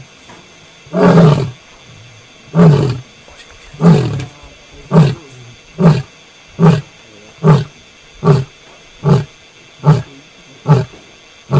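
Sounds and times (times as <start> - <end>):
lion grunting roars: 0.9 - 1.6, 2.5 - 3.0, 3.8 - 11.5.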